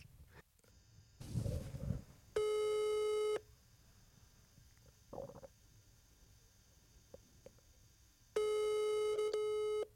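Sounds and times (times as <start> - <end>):
telephone busy tone after a call is hung up: 2.4 - 3.4, 8.4 - 9.9.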